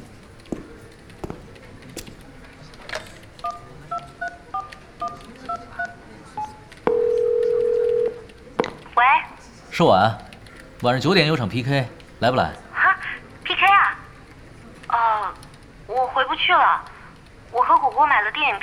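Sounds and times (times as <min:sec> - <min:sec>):
faint noise: 0:00.0 - 0:18.6
front-desk telephone keypad beeps while dialing: 0:03.4 - 0:08.2
speech: 0:09.8 - 0:10.2, 0:10.8 - 0:12.6, 0:18.0 - 0:18.6.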